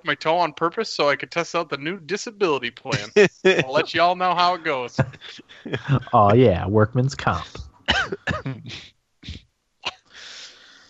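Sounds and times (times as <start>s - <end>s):
speech: 0.0s - 9.4s
laughter: 2.8s - 6.4s, 7.4s - 9.4s
person coughing harshly: 2.9s - 4.0s, 7.9s - 10.1s
long breathy exhale: 10.1s - 10.8s.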